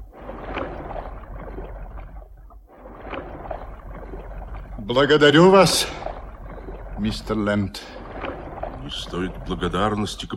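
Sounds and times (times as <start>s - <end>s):
oars dipping and pulling through water rowing a ship's boat: 0.0s - 10.3s
speech: 4.9s - 6.0s, 7.0s - 8.0s, 8.9s - 10.3s.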